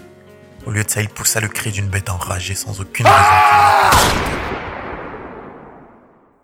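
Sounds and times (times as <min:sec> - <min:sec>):
speech: 0:00.6 - 0:04.6
magnum revolver gunshot: 0:03.9 - 0:06.4.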